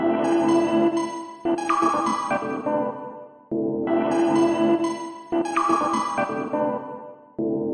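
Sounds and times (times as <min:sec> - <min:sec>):
funny electronic synth loop: 0:00.2 - 0:03.0, 0:04.0 - 0:06.8.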